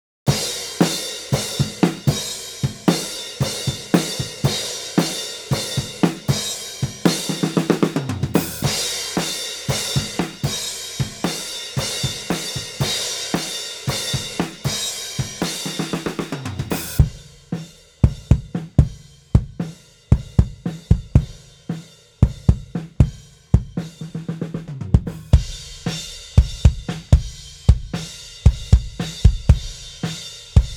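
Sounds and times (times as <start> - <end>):
subtle drums: 0.3 - 30.7.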